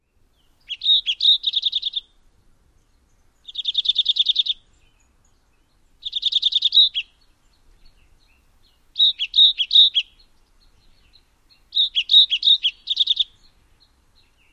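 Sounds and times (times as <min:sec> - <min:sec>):
Olive Warbler song: 0:00.0 - 0:14.5.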